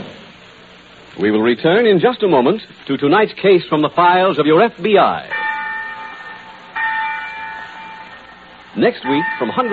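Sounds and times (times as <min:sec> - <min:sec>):
speech: 0:01.2 - 0:05.5, 0:08.7 - 0:09.6
large college bell ringing with a long humming tone: 0:05.1 - 0:09.6.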